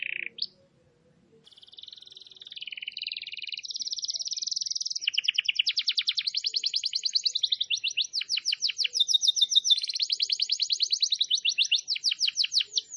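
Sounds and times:
canary-type song of quick repeated trills: 0:00.0 - 0:00.8, 0:01.4 - 0:12.9.

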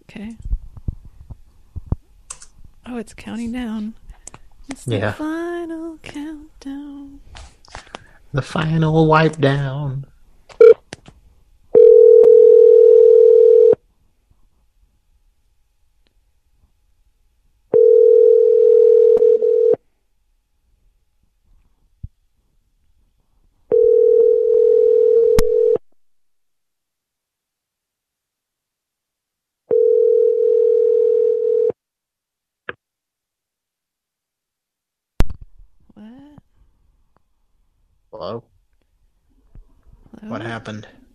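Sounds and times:
speech: 0:00.1 - 0:00.5, 0:02.9 - 0:04.0, 0:04.7 - 0:07.3, 0:08.3 - 0:10.1, 0:40.6 - 0:41.0
telephone tone after a call was hung up: 0:11.7 - 0:13.8, 0:17.7 - 0:19.8, 0:23.7 - 0:25.8, 0:29.7 - 0:31.8.

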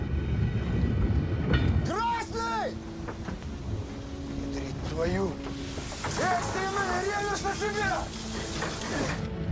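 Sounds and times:
steam train moving forward along rails: 0:00.0 - 0:09.3
uncoupled wagons rolling on rails: 0:01.9 - 0:09.4.

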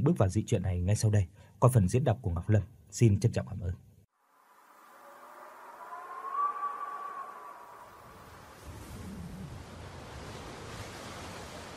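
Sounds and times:
speech: 0:00.0 - 0:03.9
wind howling: 0:04.5 - 0:11.7.

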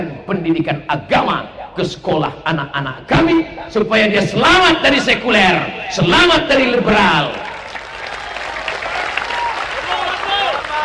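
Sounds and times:
speech: 0:00.0 - 0:07.5
audience clapping at an Indonesian religious talk: 0:06.8 - 0:10.8.

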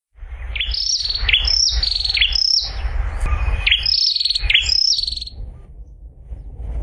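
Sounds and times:
low background rumble: 0:00.1 - 0:06.8
Prinia singing fast high sharp chirps: 0:00.4 - 0:05.4.

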